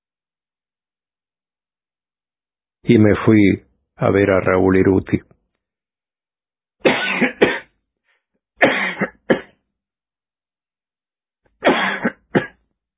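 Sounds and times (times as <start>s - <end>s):
speech: 2.8s - 5.3s
person coughing after choking on food: 6.8s - 7.7s, 8.6s - 9.6s, 11.6s - 12.6s.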